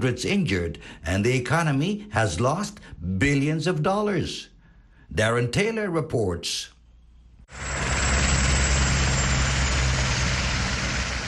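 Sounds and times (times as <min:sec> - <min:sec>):
speech: 0:00.0 - 0:04.5, 0:05.1 - 0:06.8, 0:07.5 - 0:07.8
police helicopter hovering overhead: 0:07.5 - 0:11.2.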